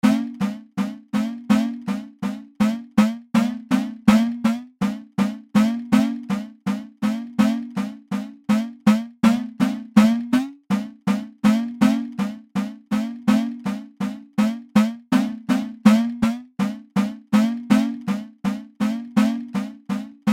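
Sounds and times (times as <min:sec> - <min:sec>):
Indian udukai hand drum: 0:00.0 - 0:20.3.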